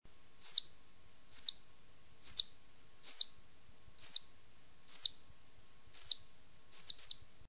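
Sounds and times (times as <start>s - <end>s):
ground squirrel alarm calls warning of danger: 0.4s - 0.7s, 1.3s - 1.6s, 2.2s - 3.4s, 4.0s - 4.3s, 4.9s - 5.2s, 5.9s - 7.3s.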